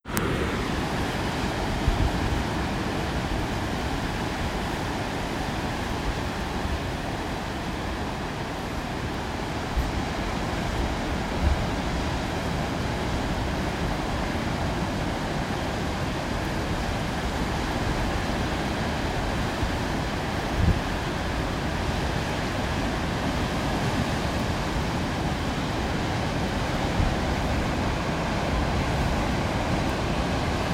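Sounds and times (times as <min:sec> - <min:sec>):
rolling ocean swells at Cape Paterson: 0:00.0 - 0:30.7.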